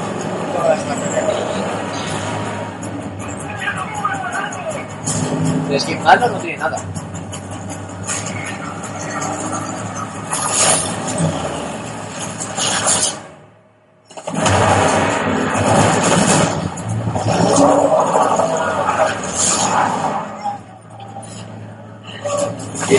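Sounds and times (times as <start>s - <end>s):
truck engine in a video game rumbling and revving: 0.0s - 13.5s, 14.1s - 22.9s
speech: 5.8s - 7.0s.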